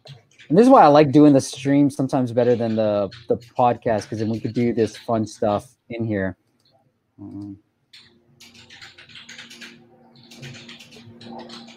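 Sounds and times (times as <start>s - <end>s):
typing on a computer keyboard: 0.0s - 5.6s, 7.3s - 11.7s
speech: 0.5s - 6.4s, 7.2s - 8.1s.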